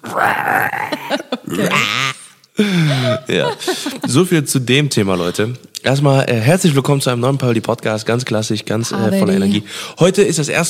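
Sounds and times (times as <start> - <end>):
loud human voice imitating pig grunts and snorts: 0.0 - 2.4
laughter: 0.8 - 5.4
speech: 3.3 - 10.6.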